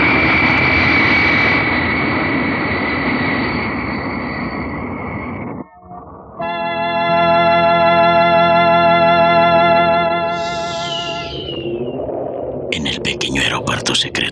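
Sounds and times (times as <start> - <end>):
small jet engine roaring while climbing at full speed: 0.0 - 12.0
crackling chattering noise: 10.4 - 14.3.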